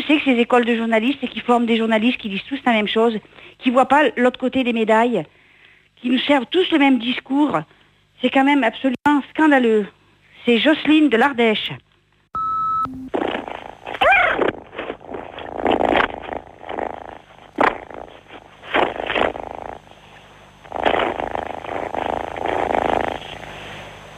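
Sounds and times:
speech: 0:00.1 - 0:05.4, 0:06.0 - 0:11.8
brief electronic beep: 0:12.4 - 0:13.1
small pet cat purring: 0:13.2 - 0:24.1.

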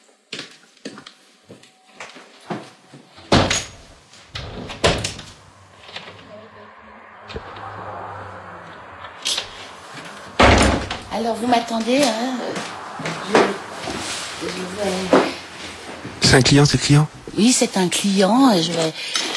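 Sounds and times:
door clunking and rattling: 0:03.3 - 0:05.4, 0:10.4 - 0:11.1
door settling with a soft thud: 0:04.4 - 0:05.4, 0:10.4 - 0:11.1
speech: 0:11.2 - 0:12.7, 0:14.4 - 0:15.3, 0:16.3 - 0:19.2.

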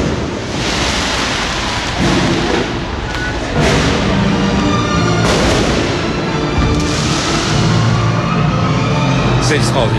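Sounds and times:
fireworks exploding inside a shopping mall: 0:00.0 - 0:08.4
speech: 0:09.5 - 0:09.9.

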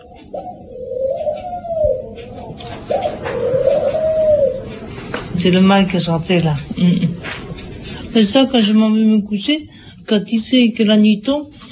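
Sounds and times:
doves cooing: 0:00.0 - 0:08.1
speech: 0:05.4 - 0:07.1, 0:08.2 - 0:11.6.

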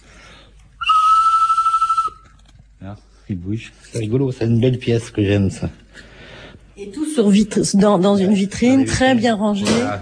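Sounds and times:
mechanical bird whistle being blown: 0:00.8 - 0:02.3
speech: 0:02.8 - 0:06.1, 0:06.8 - 0:09.9.

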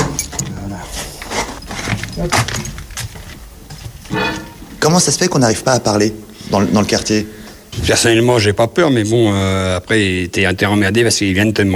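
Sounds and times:
keys jangling against the lock of a cellar door: 0:00.0 - 0:04.3
speech: 0:02.2 - 0:02.8, 0:04.8 - 0:11.7.

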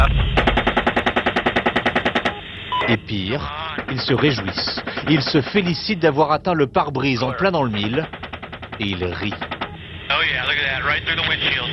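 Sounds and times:
machine gun fire from a helicopter: 0:00.0 - 0:02.4, 0:03.6 - 0:05.7, 0:07.6 - 0:09.8
speech: 0:02.9 - 0:08.2, 0:08.8 - 0:09.5, 0:10.2 - 0:11.7.

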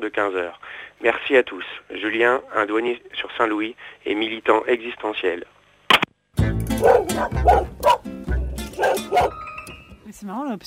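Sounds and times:
speech: 0:00.0 - 0:05.6, 0:06.8 - 0:07.9, 0:10.2 - 0:10.6
dog on a walk barking with loud deep woofs: 0:06.8 - 0:08.1, 0:08.8 - 0:09.4.

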